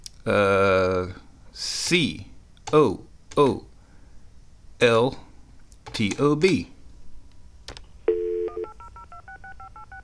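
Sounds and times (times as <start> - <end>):
speech: 0.2 - 3.7, 4.8 - 5.2, 6.0 - 6.7
steady telephone dial tone: 8.1 - 10.0
two-note telephone keypad beeps dialing a toll-free number: 8.1 - 10.0.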